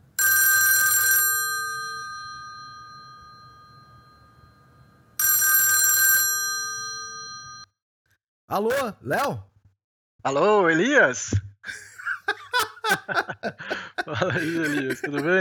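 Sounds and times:
old-style telephone ringing with a jangling bell on an incoming call: 0:00.2 - 0:07.7
speech: 0:08.5 - 0:09.5, 0:10.2 - 0:11.8, 0:12.9 - 0:15.3
laughter: 0:11.7 - 0:15.3.

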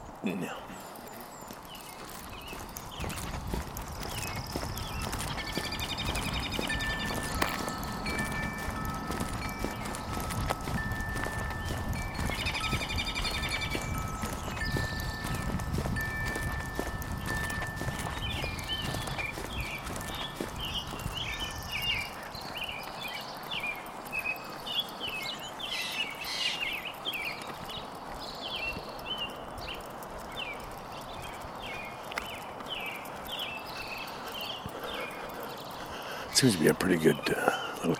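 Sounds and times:
footsteps crunching: 0:00.0 - 0:37.9
many birds chirping and singing: 0:00.0 - 0:37.9
speech: 0:00.2 - 0:00.9, 0:36.4 - 0:37.5.

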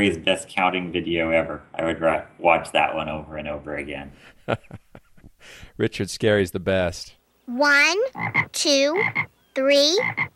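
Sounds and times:
speech: 0:00.0 - 0:04.8, 0:05.4 - 0:10.3
frogs croaking: 0:08.0 - 0:10.3.

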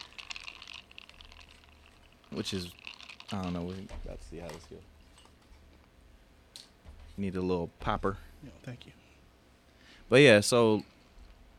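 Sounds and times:
lime juice poured into a cup of tequila and soda: 0:00.0 - 0:03.9
speech: 0:02.4 - 0:05.0, 0:07.2 - 0:09.0, 0:10.1 - 0:10.9.

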